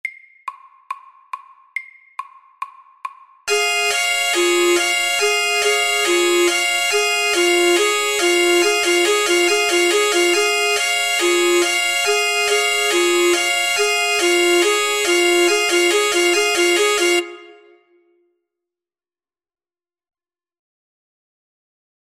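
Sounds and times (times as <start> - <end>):
fast alarm at 140 beats per minute: 3.5 - 17.8.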